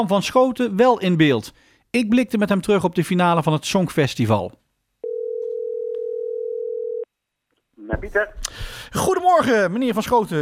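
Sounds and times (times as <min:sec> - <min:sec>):
speech: 0:00.0 - 0:04.6, 0:07.9 - 0:10.4
telephone tone while a call is being placed: 0:05.0 - 0:07.1.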